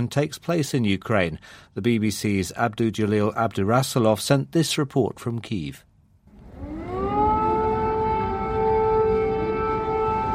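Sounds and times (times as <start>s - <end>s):
speech: 0.0s - 5.9s
air raid siren wailing in a metro station in central Kyiv, Ukraine: 6.3s - 10.3s.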